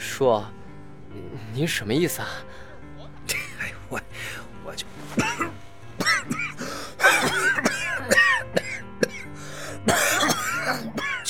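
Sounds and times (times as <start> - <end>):
speech: 0.2 - 2.6
man coughing violently: 5.2 - 11.2.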